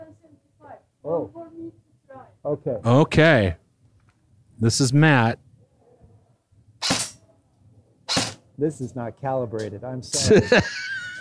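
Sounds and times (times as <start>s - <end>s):
speech: 2.5s - 3.6s, 4.6s - 5.4s, 8.6s - 10.8s
gunshot from a scoped gun at a shooting session: 6.8s - 7.2s, 8.1s - 8.4s
laughter: 10.2s - 11.2s.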